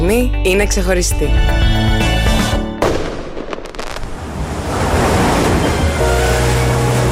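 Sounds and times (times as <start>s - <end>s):
speech: 0.0s - 2.0s
brief burst of music: 0.0s - 3.1s, 5.4s - 7.1s
sea waves crashing and rolling onto the shore: 4.0s - 7.1s.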